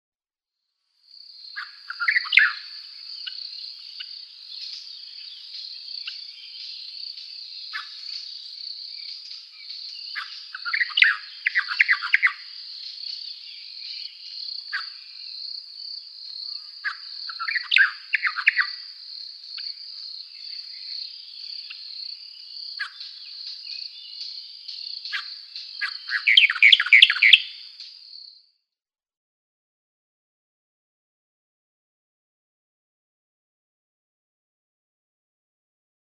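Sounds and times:
Cape Verde swamp warbler singing: 1.1s - 28.4s.

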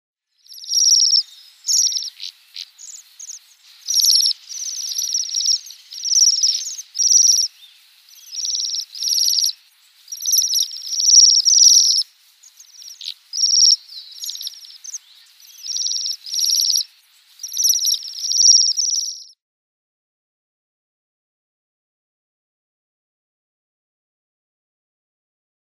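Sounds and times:
Bohemian waxwing calls: 0.4s - 19.3s.

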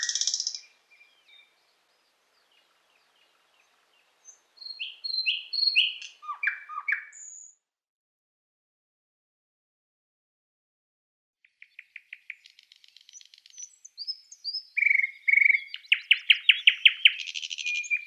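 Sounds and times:
Thrush nightingale song: 0.0s - 7.6s, 11.4s - 18.0s.

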